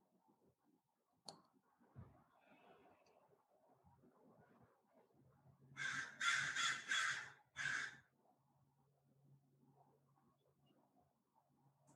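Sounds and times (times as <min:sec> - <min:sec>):
crow cawing: 0:05.8 - 0:08.0.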